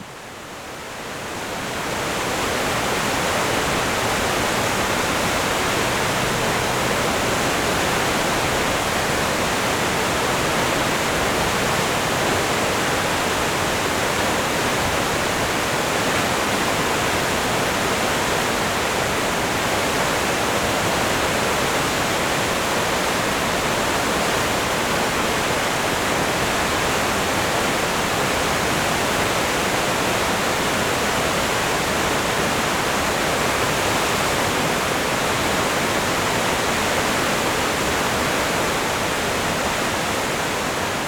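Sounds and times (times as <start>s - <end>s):
powerful mountain river roaring and rushing: 0.0s - 41.0s.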